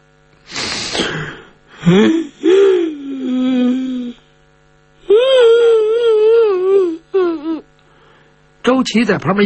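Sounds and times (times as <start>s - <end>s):
person acting out a character crying and wailing: 1.1s - 4.2s, 5.0s - 7.7s
speech: 1.8s - 2.3s, 8.8s - 9.4s.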